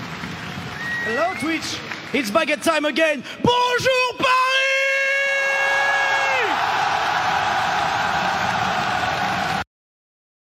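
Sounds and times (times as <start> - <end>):
arena concert crowd screaming and cheering: 0.0 - 2.5, 4.5 - 9.6
speech: 1.1 - 4.4.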